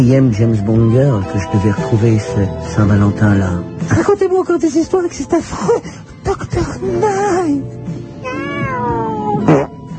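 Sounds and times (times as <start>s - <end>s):
speech: 0.0s - 9.6s
cat meowing: 8.2s - 9.7s.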